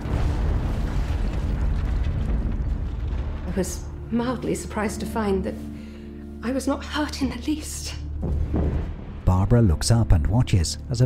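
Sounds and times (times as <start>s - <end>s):
crash and double explosion in a North London street: 0.0s - 4.1s, 8.2s - 9.5s
speech: 3.6s - 5.7s, 6.4s - 11.0s.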